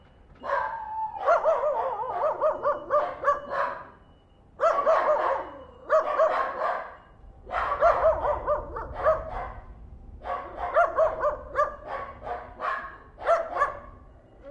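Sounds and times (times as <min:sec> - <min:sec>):
three small dogs yapping with high barks: 0:00.4 - 0:04.0, 0:04.6 - 0:14.4.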